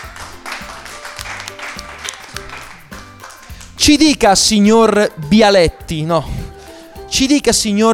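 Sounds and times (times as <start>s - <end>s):
audience in Bari applauding the inventor of the pressure cooker: 0.0s - 3.8s
speech: 3.8s - 6.4s, 7.1s - 7.9s.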